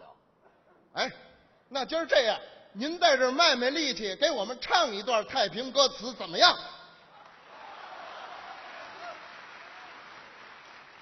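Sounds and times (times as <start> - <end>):
speech: 1.0 - 6.8
audience applause: 7.2 - 11.0.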